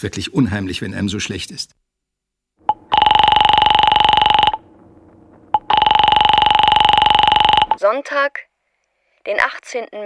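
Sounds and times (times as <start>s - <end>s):
speech: 0.0s - 1.8s, 7.9s - 8.5s, 9.2s - 10.0s
telephone ringing in an electronic warble: 2.6s - 7.8s.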